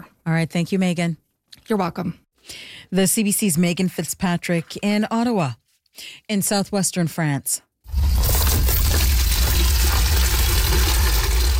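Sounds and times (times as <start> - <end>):
speech: 0.3 - 8.2
water poured into buckets: 7.9 - 11.5.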